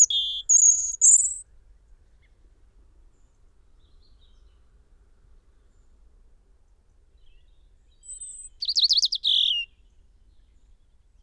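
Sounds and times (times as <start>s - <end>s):
European robin singing Erithacus rubecula: 0.0s - 1.4s, 8.0s - 9.7s.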